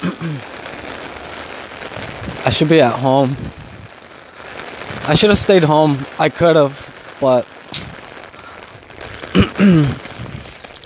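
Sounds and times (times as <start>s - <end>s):
person murmuring: 0.0s - 0.4s
heavy rain falling: 0.0s - 10.8s
speech: 2.4s - 3.6s, 5.1s - 7.5s, 9.6s - 10.0s.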